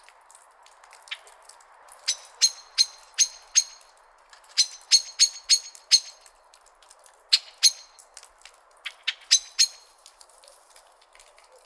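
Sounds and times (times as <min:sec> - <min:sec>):
common blackbird Turdus merula chinking calls: 0:02.0 - 0:03.9, 0:04.5 - 0:06.3, 0:07.3 - 0:08.1, 0:08.8 - 0:10.0.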